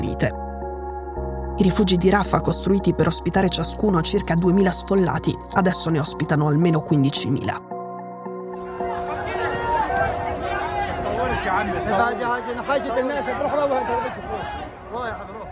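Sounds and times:
speech: 0:00.1 - 0:00.4, 0:01.6 - 0:07.7, 0:11.4 - 0:15.4
crowd of Palestinians shouting while seizing flour sacks from a truck: 0:08.6 - 0:15.5.

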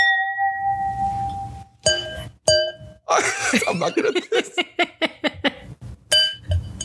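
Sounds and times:
wine glasses clinking in a toast: 0:00.0 - 0:03.0, 0:06.1 - 0:06.8
laughter: 0:03.1 - 0:05.7
speech: 0:03.6 - 0:04.7.

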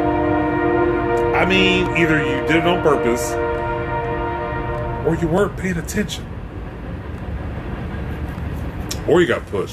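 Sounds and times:
train rumbling past: 0:00.0 - 0:09.7
speech: 0:01.4 - 0:03.4, 0:05.0 - 0:06.3, 0:09.1 - 0:09.7.

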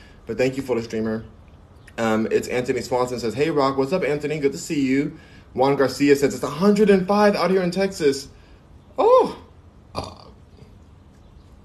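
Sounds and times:
speech: 0:00.3 - 0:01.4, 0:02.0 - 0:08.4
person burping: 0:09.9 - 0:10.7.

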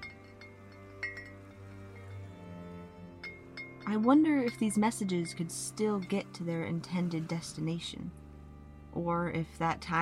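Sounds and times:
glass bottles hanging from a tree clinking when tapped by hand: 0:00.0 - 0:06.4
speech: 0:03.9 - 0:08.2, 0:09.0 - 0:09.9.

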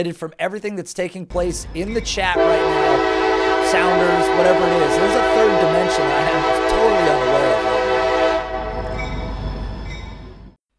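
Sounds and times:
speech: 0:00.0 - 0:07.7
low rumble: 0:01.3 - 0:06.2, 0:07.6 - 0:10.6
train horn blaring: 0:01.3 - 0:10.6.

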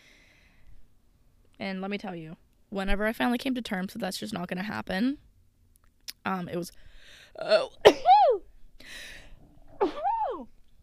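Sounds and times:
speech: 0:01.6 - 0:05.2, 0:06.2 - 0:08.2, 0:09.8 - 0:10.0
breathy exhale: 0:06.8 - 0:07.4, 0:08.8 - 0:09.6
person sneezing: 0:09.8 - 0:10.4.

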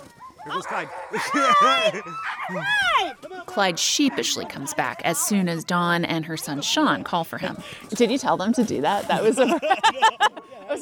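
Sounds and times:
harnessed sled dogs barking and yelping on an expedition: 0:00.0 - 0:05.8
speech: 0:00.4 - 0:10.8
laughter: 0:01.1 - 0:04.4, 0:09.0 - 0:10.8.

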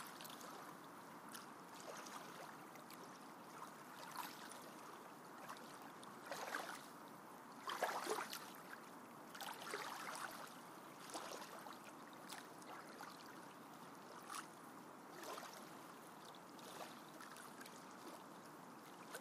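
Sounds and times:
lake ambience: 0:00.0 - 0:19.1
white noise: 0:00.0 - 0:19.1.

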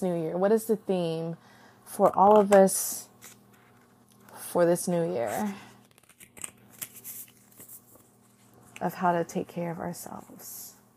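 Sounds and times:
speech: 0:00.0 - 0:03.1, 0:04.5 - 0:05.7, 0:08.8 - 0:10.6
card deck shuffling before a self-care reading: 0:03.2 - 0:04.0, 0:05.3 - 0:08.8.

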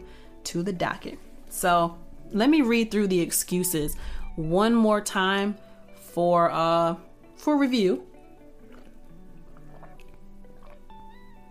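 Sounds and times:
speech: 0:00.4 - 0:08.1
person gulping water: 0:08.2 - 0:11.4.

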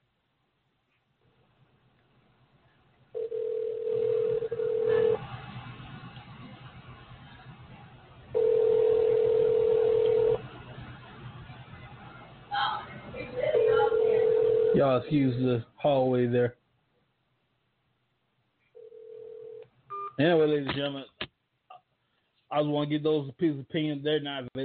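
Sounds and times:
faint hum: 0:00.0 - 0:24.6
phone ringback tone on an outgoing call: 0:03.2 - 0:05.2, 0:08.4 - 0:10.4, 0:13.6 - 0:14.8, 0:18.8 - 0:20.1
speech: 0:14.8 - 0:16.6, 0:20.2 - 0:21.2, 0:22.5 - 0:24.6.

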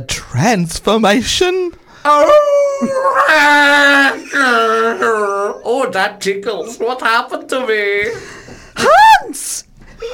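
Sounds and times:
speech: 0:00.0 - 0:10.1
wolf howling: 0:02.1 - 0:05.6.

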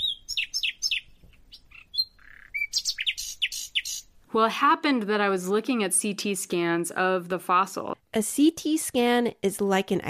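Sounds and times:
birdsong of descending chirps and high trills: 0:00.0 - 0:04.2
speech: 0:04.3 - 0:10.0.

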